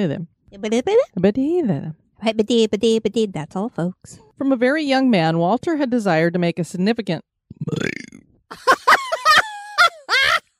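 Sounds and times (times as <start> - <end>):
speech: 0.0 - 8.8
loud burp: 7.5 - 8.3
laughter: 8.5 - 10.5.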